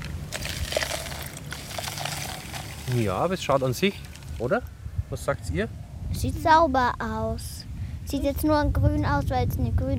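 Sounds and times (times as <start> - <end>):
water poured into a homemade bottle filter packed with sand and charcoal: 0.4 - 3.2
speech: 2.9 - 7.5, 8.1 - 9.9.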